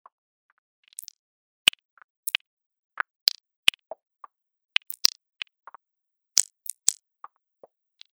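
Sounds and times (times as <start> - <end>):
velocity noise clicks: 4.8 - 5.2, 6.4 - 7.0.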